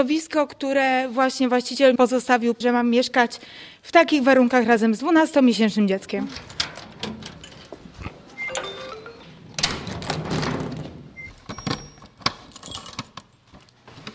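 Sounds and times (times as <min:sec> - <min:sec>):
speech: 0:00.0 - 0:06.7
keys jangling and rattling in a stuck door lock: 0:06.4 - 0:07.8, 0:12.0 - 0:13.5.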